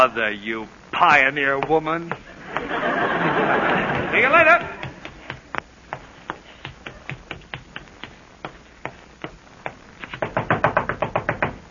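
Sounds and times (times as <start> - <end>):
speech: 0.0 - 4.8
laughter: 2.2 - 5.0
knocking on a bedroom door: 10.2 - 11.6.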